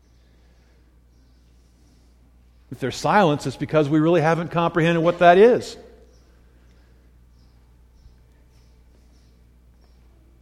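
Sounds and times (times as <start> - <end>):
bird chirping in short high calls: 0.0 - 1.6, 5.9 - 10.3
low hum: 0.0 - 10.3
speech: 2.7 - 5.9.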